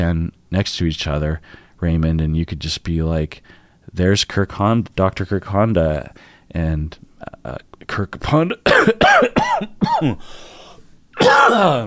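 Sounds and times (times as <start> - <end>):
speech: 0.0 - 10.5, 11.2 - 11.8
person coughing: 8.6 - 10.3, 11.2 - 11.8.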